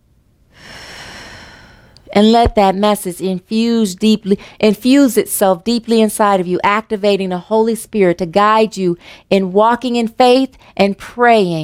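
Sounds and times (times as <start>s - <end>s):
deep breath drawn in: 0.5s - 2.0s
speech: 2.1s - 11.6s.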